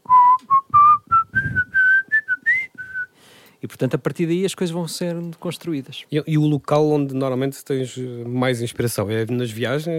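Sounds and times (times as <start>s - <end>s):
person whistling a melody: 0.0s - 3.1s
speech: 3.8s - 9.9s.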